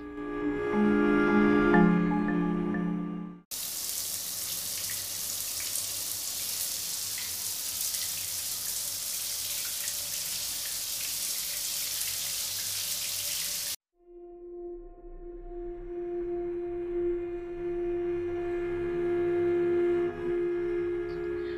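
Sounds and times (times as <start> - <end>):
soft tonal music: 0.0 - 3.5, 14.0 - 21.5
steady rain pouring: 3.5 - 13.8.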